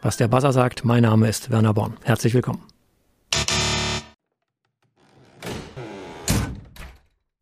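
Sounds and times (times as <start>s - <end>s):
speech: 0.0s - 2.7s
doors slamming: 5.4s - 7.1s.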